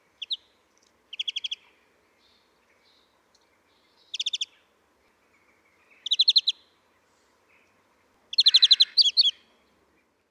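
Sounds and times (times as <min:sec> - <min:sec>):
European greenfinch Chloris chloris chirping trills: 0:04.0 - 0:04.6, 0:05.8 - 0:06.6, 0:08.3 - 0:09.4.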